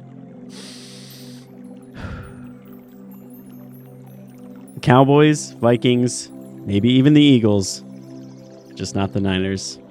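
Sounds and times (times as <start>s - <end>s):
deep breathing with airy inhale and rough exhale: 0.5s - 2.6s
speech: 4.8s - 7.9s, 8.8s - 9.8s.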